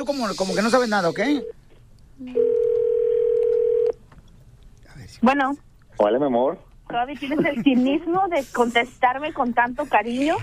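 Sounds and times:
speech: 0:00.0 - 0:01.6, 0:02.2 - 0:02.5, 0:05.2 - 0:10.4
telephone ringback tone while placing a call: 0:02.4 - 0:04.0.

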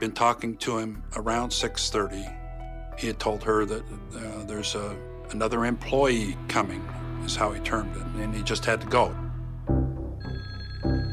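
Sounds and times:
speech: 0:00.0 - 0:02.4, 0:03.0 - 0:09.2
telephone ringing in short electronic bursts: 0:10.2 - 0:11.1.

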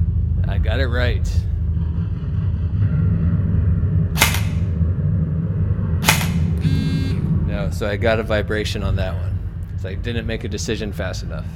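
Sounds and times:
steady low rumble: 0:00.0 - 0:11.5
speech: 0:00.6 - 0:01.5, 0:07.7 - 0:11.5
assault rifle shots in a shooting test: 0:04.2 - 0:04.7, 0:06.0 - 0:06.6.

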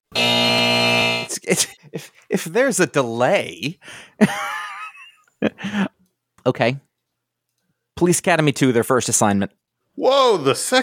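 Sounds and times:
loud harsh electronic buzzer: 0:00.1 - 0:01.4
laughter: 0:01.3 - 0:02.3, 0:04.2 - 0:06.0
speech: 0:01.5 - 0:04.6, 0:05.4 - 0:06.9, 0:08.0 - 0:10.8.

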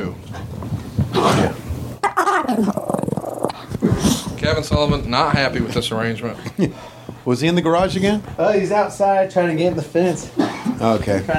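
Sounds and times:
dog growling: 0:01.1 - 0:04.5
speech: 0:04.5 - 0:11.3.

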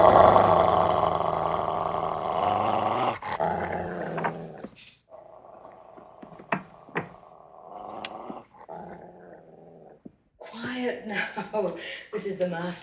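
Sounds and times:
dog growling low: 0:00.0 - 0:10.1
sharp snaps: 0:07.8 - 0:08.4
speech: 0:11.8 - 0:12.8.

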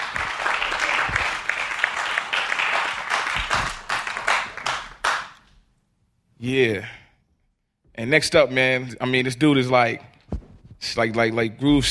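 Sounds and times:
crowd clapping and cheering: 0:00.0 - 0:05.5
speech: 0:06.4 - 0:07.0, 0:08.0 - 0:10.1, 0:10.8 - 0:11.8.

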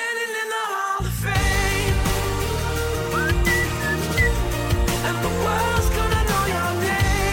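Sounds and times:
full music backing: 0:01.0 - 0:07.3
person whistling a short melody of bright sliding notes: 0:03.1 - 0:04.4.

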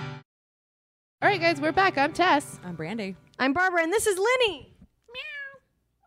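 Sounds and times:
speech: 0:01.4 - 0:05.3
cat meowing: 0:05.1 - 0:06.0.

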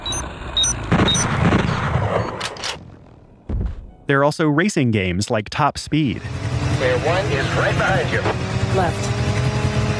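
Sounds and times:
high electronic tones in an audio-only video game: 0:00.0 - 0:02.4
manual bolt gun firing in an audio-only first-person shooter video game: 0:00.9 - 0:03.0
speech: 0:04.1 - 0:09.2.

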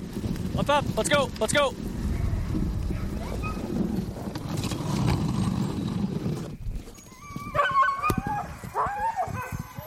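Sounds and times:
low rumbling movement and rustle: 0:00.0 - 0:07.6
speech: 0:00.6 - 0:01.9
pack of dogs barking and yelping excitedly: 0:02.1 - 0:03.8, 0:07.0 - 0:09.8
dogs howling: 0:07.1 - 0:09.8.

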